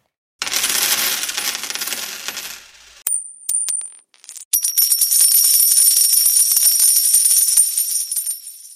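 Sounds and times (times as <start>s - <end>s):
small metal euro cent coins spilling and clinking onto a hard surface: 0.4s - 8.7s.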